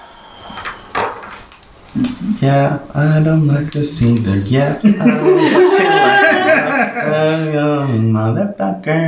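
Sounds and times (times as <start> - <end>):
door being unlocked and opened: 0.0 - 4.8
wooden clunks of a door: 0.0 - 4.9
laughter: 0.0 - 9.0
speech: 2.0 - 9.0.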